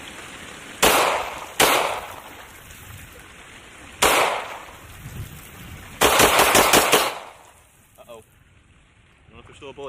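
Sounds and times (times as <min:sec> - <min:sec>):
gunshots from a gun loaded with pond scum: 0:00.8 - 0:02.3, 0:04.0 - 0:04.7, 0:06.0 - 0:07.4.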